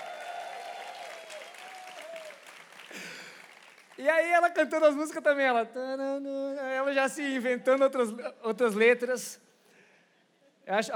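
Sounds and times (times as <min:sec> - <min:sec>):
small group clapping: 0:00.0 - 0:04.0
speech: 0:04.0 - 0:09.4, 0:10.7 - 0:10.9.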